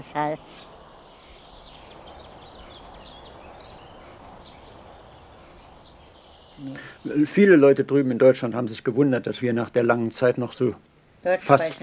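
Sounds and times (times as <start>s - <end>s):
speech: 0.0s - 0.7s, 6.6s - 11.8s
steady broadband hiss: 0.0s - 7.7s
birds chirping outdoors: 0.0s - 10.7s
low rumble: 0.1s - 7.6s.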